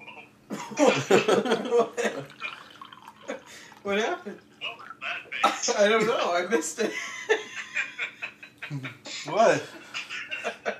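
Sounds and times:
laughter: 0.5s - 2.6s, 5.4s - 10.7s
speech: 0.7s - 2.0s, 3.9s - 4.5s, 5.6s - 7.2s, 8.7s - 9.8s
ready-to-drink margarita poured into a glass: 2.1s - 5.3s.

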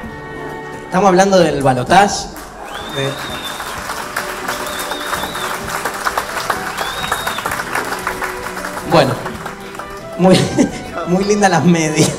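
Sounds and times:
speech: 0.9s - 3.4s, 8.9s - 9.2s, 10.2s - 12.1s
audience applause: 2.3s - 10.8s
laughter: 10.2s - 11.1s, 11.9s - 12.1s.

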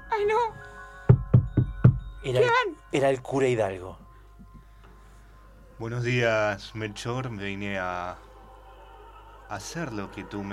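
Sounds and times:
speech: 0.2s - 0.7s, 2.2s - 4.0s, 5.8s - 8.3s, 9.5s - 10.5s
solid knocks on a house door: 1.1s - 2.2s.

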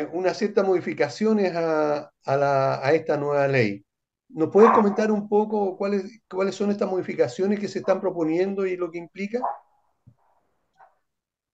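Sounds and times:
speech: 0.0s - 9.6s
pet dog barking in short yelps: 4.6s - 5.1s, 9.4s - 9.7s.

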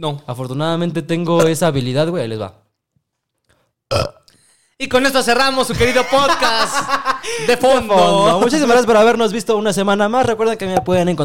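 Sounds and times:
speech: 0.0s - 2.6s, 3.9s - 4.2s, 4.8s - 11.2s
deliberate self-induced gravelly burp: 3.9s - 4.3s
laughter: 5.6s - 8.9s.

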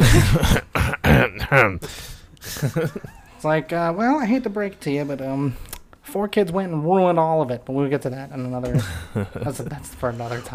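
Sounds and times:
gravelly throat clearing: 0.0s - 1.8s
voice deliberately faking coughs: 0.0s - 1.8s
speech: 0.2s - 0.8s, 1.5s - 10.5s.

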